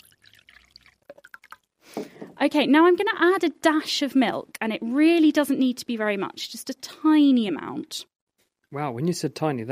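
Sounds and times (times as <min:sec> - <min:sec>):
gurgling water drips in a jug: 0:00.0 - 0:01.8
water being poured into a jug: 0:00.0 - 0:01.8
speech: 0:02.4 - 0:08.1, 0:08.7 - 0:09.6.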